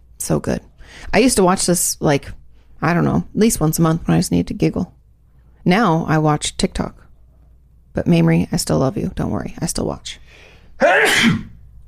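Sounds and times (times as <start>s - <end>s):
speech: 0.3s - 5.0s, 5.6s - 7.0s, 8.0s - 11.5s
sneeze: 10.8s - 11.6s.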